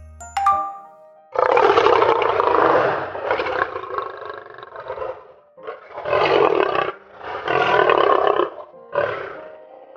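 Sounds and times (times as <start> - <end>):
short metallic ding: 0.2 - 1.0
lion roaring loudly, recorded on phone: 1.4 - 9.9.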